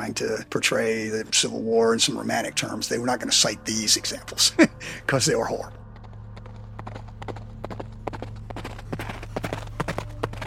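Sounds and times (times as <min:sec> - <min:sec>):
speech: 0:00.0 - 0:05.8
low constant hum: 0:00.0 - 0:10.4
horse hooves clip-clopping at a walk: 0:05.4 - 0:10.4.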